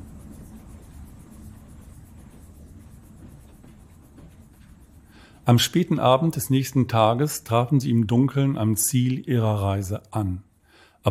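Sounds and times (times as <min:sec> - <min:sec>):
train rolling with heavy low rumble: 0:00.0 - 0:08.2
faint rattling hiss of train: 0:00.0 - 0:11.0
speech: 0:05.5 - 0:11.0.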